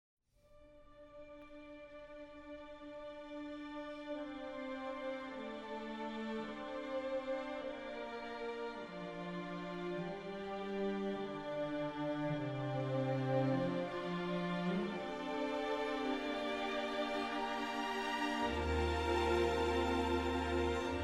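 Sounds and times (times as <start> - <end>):
strings in an elegy: 0.8 - 21.0
trumpet in an elegy: 14.7 - 21.0.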